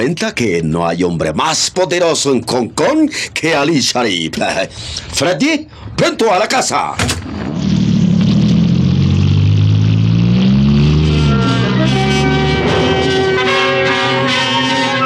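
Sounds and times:
speech: 0.0s - 7.7s
car engine revving and accelerating: 7.6s - 15.0s.

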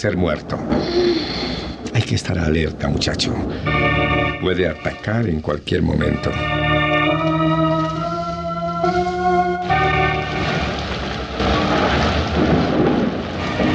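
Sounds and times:
speech: 0.0s - 1.5s, 2.1s - 6.8s
thunder rumbling among rocks: 0.0s - 13.7s
steady tonal drone: 2.6s - 5.2s, 6.0s - 12.1s.

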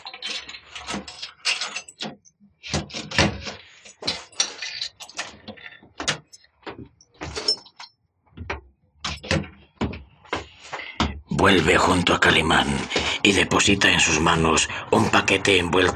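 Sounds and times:
keys rattling in the locks of a wooden chest of drawers: 0.0s - 7.9s
speech: 11.4s - 15.9s.

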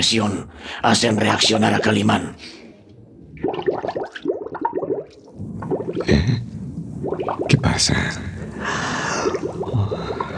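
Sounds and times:
speech: 0.0s - 2.6s, 6.0s - 6.5s, 7.5s - 9.0s
water gurgling and bubbling as it pours into a closed trunk: 3.3s - 7.6s, 8.3s - 10.3s.

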